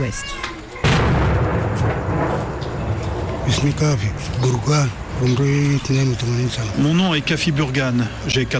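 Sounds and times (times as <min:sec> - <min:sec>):
speech: 0:00.0 - 0:00.4, 0:03.5 - 0:08.5
artillery shelling: 0:00.8 - 0:04.3.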